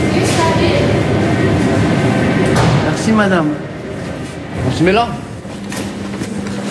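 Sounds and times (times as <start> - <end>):
commuter train rumbling at a station platform: 0.0 - 6.6
speech: 3.2 - 3.8, 4.6 - 5.3.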